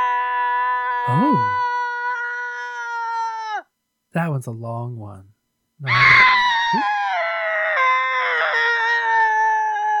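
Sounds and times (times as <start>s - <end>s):
person screaming: 0.0s - 3.0s, 5.8s - 9.9s
speech: 1.0s - 1.8s, 4.2s - 7.0s.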